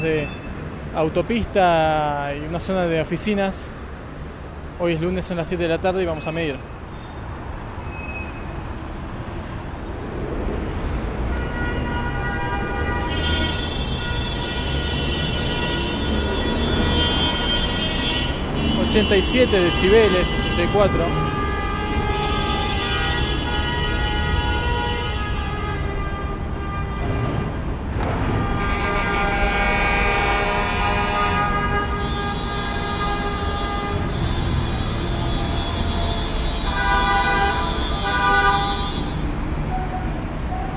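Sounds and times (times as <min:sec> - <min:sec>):
speech: 0:00.0 - 0:03.8, 0:04.8 - 0:06.7, 0:19.0 - 0:21.4
heavy traffic on a three-level highway by an office area: 0:00.0 - 0:40.7
vehicle horns honking on a three-level highway: 0:11.3 - 0:27.6, 0:28.2 - 0:39.3.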